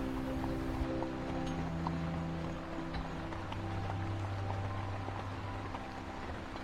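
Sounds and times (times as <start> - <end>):
hooves of two horses clip-clopping pulling a carriage: 0.0 - 6.6
wooden carriage wheels rumbling: 0.0 - 6.6.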